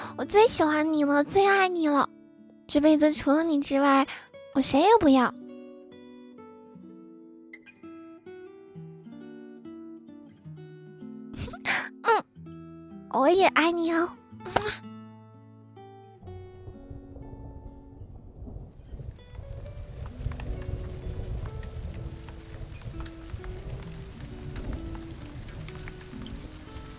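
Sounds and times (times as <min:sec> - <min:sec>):
speech: 0:00.2 - 0:05.4, 0:13.2 - 0:14.9
steady rain: 0:16.6 - 0:26.9.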